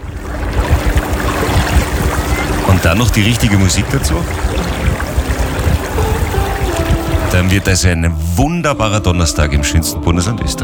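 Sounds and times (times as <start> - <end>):
water lapping against a motorboat hull on a lake: 0.0 - 7.7
steady broadband wash of wind: 0.0 - 7.9
speech: 2.8 - 4.6, 7.4 - 10.6.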